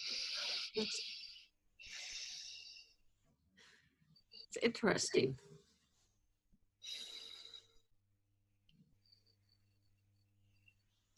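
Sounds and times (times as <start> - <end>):
alternate nostril breathing: 0.0 - 4.3, 6.8 - 8.0
speech: 0.8 - 1.1, 4.5 - 5.5.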